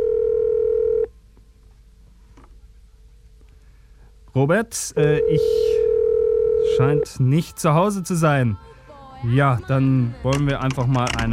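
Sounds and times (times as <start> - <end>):
telephone ringback tone over the line: 0.0 - 1.1, 5.1 - 8.6
speech: 4.4 - 5.9, 6.8 - 11.3.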